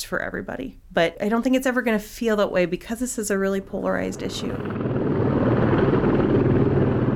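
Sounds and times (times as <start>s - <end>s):
speech: 0.0s - 5.0s
helicopter taking off with rotor thrum and engine whine: 3.7s - 7.1s.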